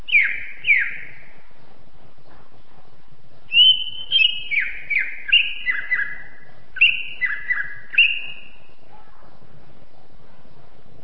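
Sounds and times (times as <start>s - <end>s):
greater green leafbird whistled song: 0.0s - 1.4s, 3.5s - 8.8s.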